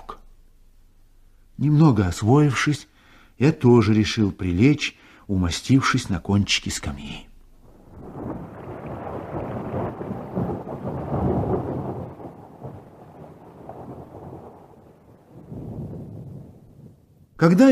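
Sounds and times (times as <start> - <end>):
speech: 1.6 - 7.3, 17.4 - 17.7
rain in a thunderstorm: 7.4 - 17.5
rolling thunder in a thunderstorm: 7.6 - 17.4.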